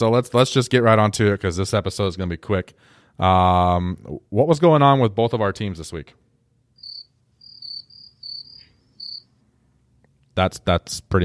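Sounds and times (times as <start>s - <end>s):
speech: 0.0s - 6.2s, 10.4s - 11.2s
crickets chirping in high-pitched trills: 6.8s - 9.3s.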